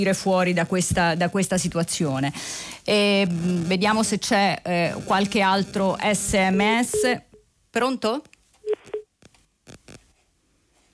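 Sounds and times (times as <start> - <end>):
speech: 0.0 - 8.3
short electronic phone line beeps after a dropped call: 6.8 - 7.4, 8.6 - 9.1.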